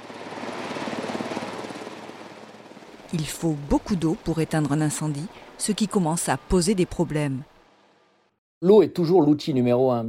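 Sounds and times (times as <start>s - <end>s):
water-bombing firefighting helicopter rotor chopping in France: 0.0s - 7.5s
speech: 3.1s - 7.5s, 8.6s - 10.0s.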